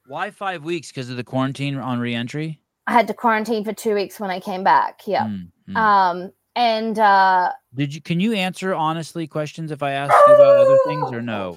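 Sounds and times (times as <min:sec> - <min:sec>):
speech: 0:00.1 - 0:11.5
dog barking and yelping: 0:10.1 - 0:11.2.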